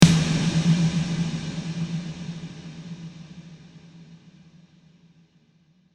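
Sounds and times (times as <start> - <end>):
big wet snare drum hit: 0.0 - 3.8.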